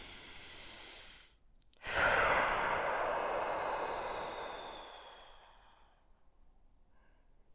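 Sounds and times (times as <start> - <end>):
breath drawn in through the nose: 0.0 - 6.0
long steady exhale through the mouth: 0.0 - 6.0.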